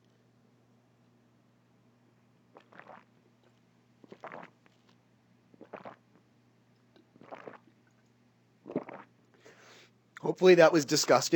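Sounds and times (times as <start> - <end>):
low constant hum: 0.0 - 11.3
person sipping and gulping water: 2.5 - 9.5
speech: 10.3 - 11.3.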